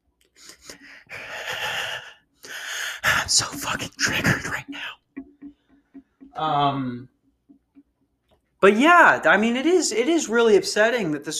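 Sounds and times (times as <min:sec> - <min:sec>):
deep breath drawing in a hit of marijuana: 0:00.4 - 0:03.1
speech: 0:03.3 - 0:05.0, 0:06.4 - 0:07.1, 0:08.6 - 0:11.3.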